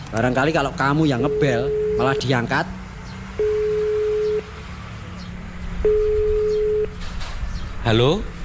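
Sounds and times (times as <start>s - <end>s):
speech: 0.1s - 2.8s, 7.9s - 8.4s
phone ringback tone over a loudspeaker: 1.2s - 2.3s, 3.4s - 4.5s, 5.8s - 6.9s.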